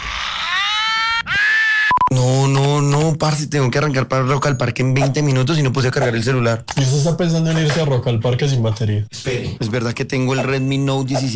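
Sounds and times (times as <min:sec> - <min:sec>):
loud rock-style scream: 0:00.0 - 0:02.0
speech: 0:02.1 - 0:11.3.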